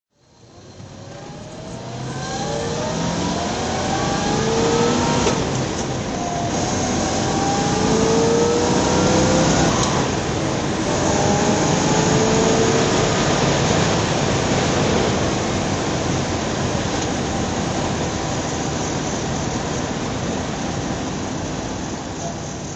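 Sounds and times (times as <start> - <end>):
Corvette driving: 0.2 - 22.7.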